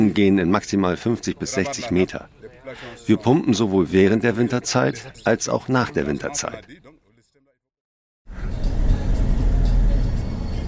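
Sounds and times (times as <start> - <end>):
speech: 0.0 - 7.6
car interior rumble driving on sandy streets: 8.3 - 10.6.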